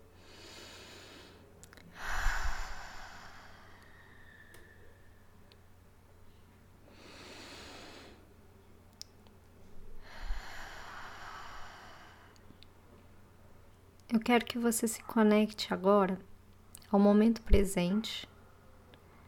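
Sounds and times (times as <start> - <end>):
deep breathing in and out during a guided meditation breathing exercise: 0.0 - 5.3, 6.8 - 8.3, 9.9 - 12.5
speech: 14.1 - 16.3, 16.9 - 18.3.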